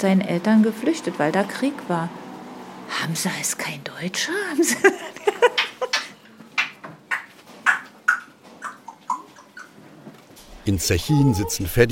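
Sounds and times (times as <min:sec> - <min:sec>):
speech: 0:00.0 - 0:02.2, 0:02.9 - 0:05.6, 0:10.6 - 0:11.8
parrot squawking and chirping in its cage: 0:07.1 - 0:09.8, 0:11.0 - 0:11.8.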